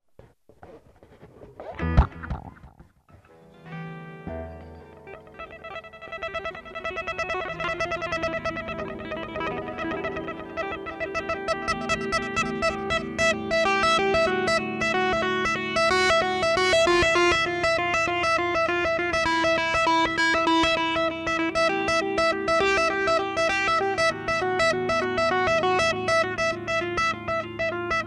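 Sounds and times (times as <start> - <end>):
guitar: 0.2 - 28.0.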